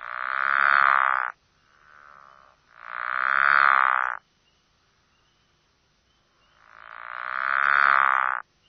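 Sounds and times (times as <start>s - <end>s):
pickerel frog calling: 0.0s - 4.2s, 6.2s - 8.4s.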